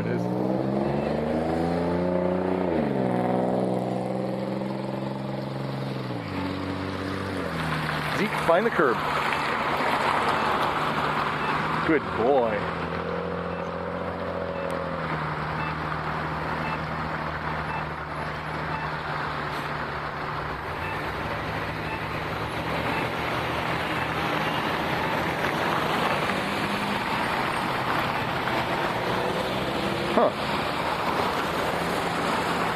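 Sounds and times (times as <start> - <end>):
cars and heavier vehicles passing in street traffic: 0.0 - 32.7
low engine hum: 0.0 - 32.7
speech: 8.2 - 9.2, 11.9 - 12.8.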